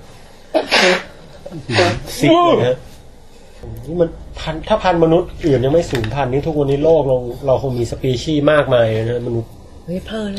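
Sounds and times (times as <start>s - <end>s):
forceful nose blowing: 0.6s - 1.2s
speech: 0.8s - 2.9s, 3.9s - 10.3s.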